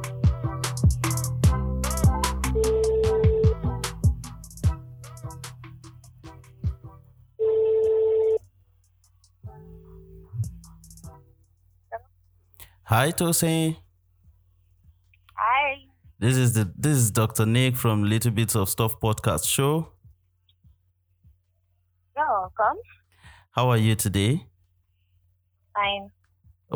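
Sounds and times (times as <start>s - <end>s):
light plucked music: 0.0s - 7.0s, 9.4s - 11.5s
outgoing phone call electronic ringing tone: 2.5s - 3.7s, 7.4s - 8.4s
speech: 12.9s - 13.8s, 16.2s - 20.0s, 23.6s - 24.5s, 25.8s - 26.7s.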